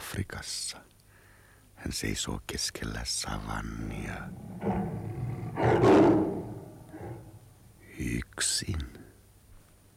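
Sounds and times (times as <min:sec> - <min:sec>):
speech: 0:00.2 - 0:00.9, 0:01.8 - 0:06.3, 0:08.0 - 0:09.0
lion roaring: 0:03.4 - 0:07.8.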